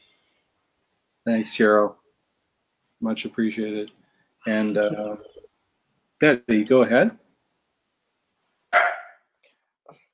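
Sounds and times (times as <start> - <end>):
speech: 1.2 - 2.0, 3.0 - 5.3, 6.2 - 7.2
puppy barking: 8.8 - 9.2.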